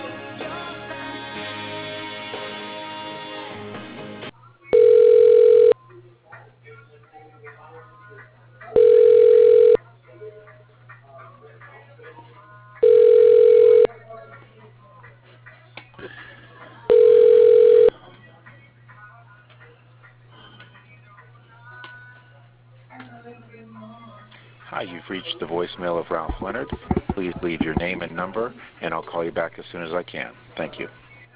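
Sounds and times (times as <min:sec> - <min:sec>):
low continuous hum: 0:04.3 - 0:31.3
telephone ringback tone ringing through to an extension: 0:04.7 - 0:05.8, 0:08.8 - 0:09.8, 0:12.8 - 0:13.9, 0:16.9 - 0:17.9
speech: 0:25.1 - 0:31.0.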